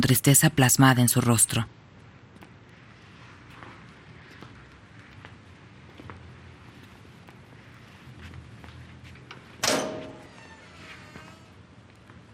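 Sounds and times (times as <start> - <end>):
speech: 0.0 - 1.8
door closing thud: 9.6 - 10.6.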